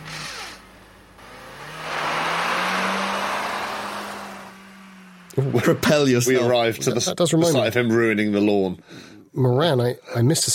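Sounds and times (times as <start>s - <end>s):
car engine drone during donuts and handbrake turn: 0.0s - 6.9s
car tyres skidding during donuts and handbrake turn: 0.0s - 6.9s
speech: 5.4s - 10.5s.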